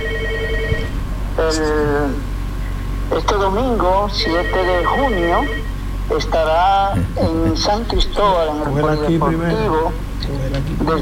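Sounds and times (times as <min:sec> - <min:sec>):
telephone ringing: 0:00.0 - 0:02.0, 0:03.8 - 0:05.9
low murmur: 0:00.0 - 0:10.9
speech: 0:01.4 - 0:02.3, 0:03.1 - 0:10.9.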